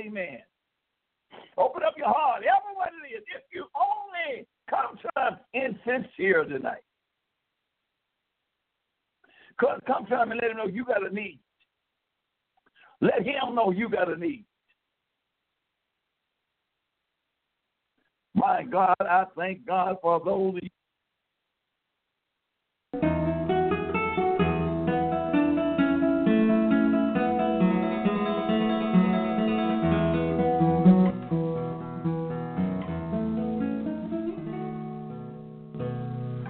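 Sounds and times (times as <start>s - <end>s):
speech: 0.2s - 0.5s, 1.3s - 3.7s, 4.3s - 6.9s, 9.6s - 11.4s, 13.0s - 14.5s, 18.4s - 20.8s
steady organ-like music: 23.0s - 36.4s.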